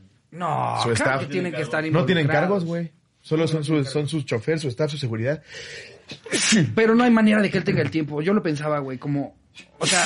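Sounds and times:
speech: 0:00.3 - 0:10.0
person sneezing from allergies: 0:06.0 - 0:06.8, 0:09.6 - 0:10.0.

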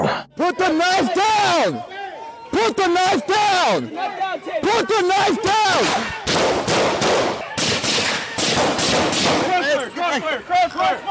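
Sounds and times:
people shouting urgently: 0:00.4 - 0:06.3, 0:09.4 - 0:11.0
speech: 0:01.6 - 0:02.0, 0:02.6 - 0:07.4, 0:08.6 - 0:11.0
police gunshots fired in rapid succession: 0:05.8 - 0:09.6.

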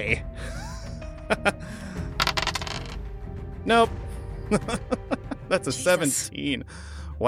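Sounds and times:
speech: 0:00.0 - 0:00.3, 0:01.3 - 0:01.8, 0:03.6 - 0:07.2
dice rattling on a table: 0:02.2 - 0:03.0
laughter: 0:04.5 - 0:06.2
person vocalizing: 0:05.7 - 0:06.3.

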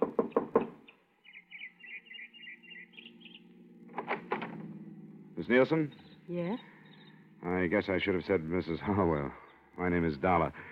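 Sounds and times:
knocking on a small house door: 0:00.0 - 0:00.8
faint bird chirps: 0:00.3 - 0:03.7, 0:05.2 - 0:10.7
speech: 0:05.4 - 0:06.7, 0:07.4 - 0:10.7.

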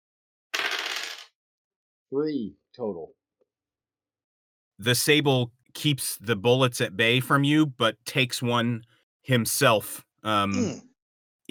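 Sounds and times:
dice clattering and rattling across a hard tabletop: 0:00.6 - 0:01.3
speech: 0:02.1 - 0:03.2, 0:04.8 - 0:10.9.

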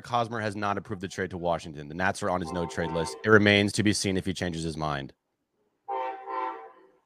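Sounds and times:
speech: 0:00.0 - 0:05.2
train horn: 0:02.5 - 0:03.4, 0:05.9 - 0:06.9.

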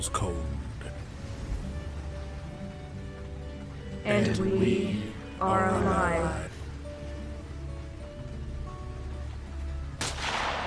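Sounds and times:
speech: 0:00.0 - 0:01.0, 0:04.0 - 0:06.5
low steady droning ambience with faint tonal hum: 0:00.0 - 0:10.6
distant gunshot with rough hissing tail: 0:10.0 - 0:10.6.

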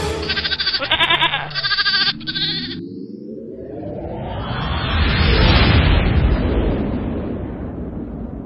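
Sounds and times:
goat bleating: 0:00.2 - 0:02.8
loud rushing rumble: 0:03.4 - 0:08.4.

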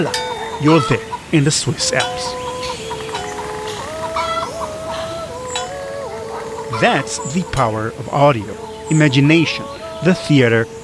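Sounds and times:
speech: 0:00.0 - 0:02.5, 0:06.8 - 0:10.8
chickens clucking: 0:00.0 - 0:10.8
laughter: 0:00.0 - 0:10.8.

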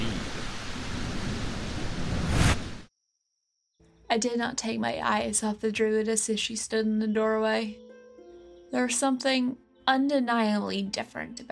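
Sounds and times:
deep rolling thunder rumble: 0:00.0 - 0:02.8
rain-like noise of a thunderstorm: 0:00.0 - 0:02.8
speech: 0:04.1 - 0:07.8, 0:08.7 - 0:11.4.

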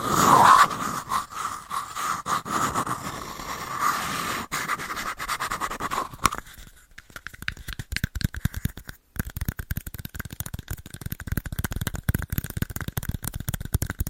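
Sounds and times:
rough scratching with hands: 0:00.0 - 0:14.0
quick irregular tapping with hands: 0:06.0 - 0:14.0.

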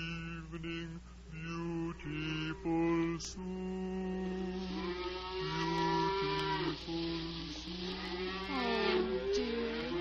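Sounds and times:
speech: 0:00.5 - 0:04.5
cows mooing: 0:03.8 - 0:10.0.

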